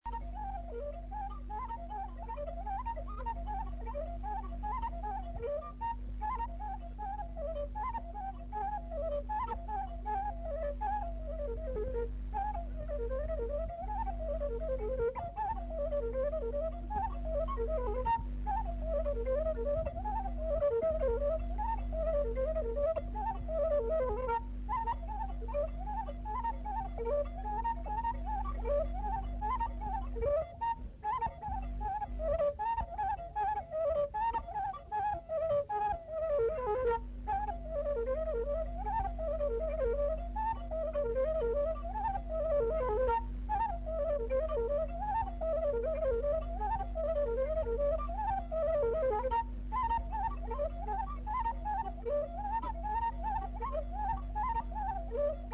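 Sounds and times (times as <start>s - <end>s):
folk tune on a fluier flute: 0.0s - 55.5s.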